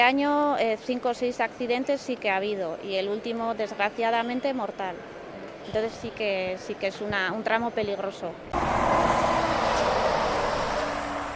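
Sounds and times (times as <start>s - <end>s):
speech: 0.0s - 8.8s
heavy trucks passing on a road with engine drone and tire noise: 8.6s - 11.3s.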